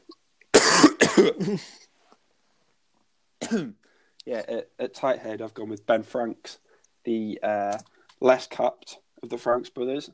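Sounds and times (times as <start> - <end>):
harsh coughing fit: 0.5 - 1.8, 3.4 - 3.8
speech: 1.2 - 1.8, 3.5 - 10.1.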